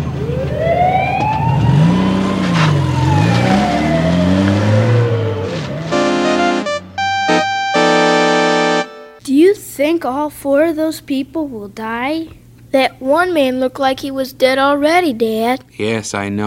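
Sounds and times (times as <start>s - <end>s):
ambulance siren wailing on a highway after a crash: 0.1s - 9.2s
engine revving on a highway: 1.6s - 6.8s
loud blaring horn-like blasts: 5.9s - 9.2s
speech: 9.9s - 16.4s.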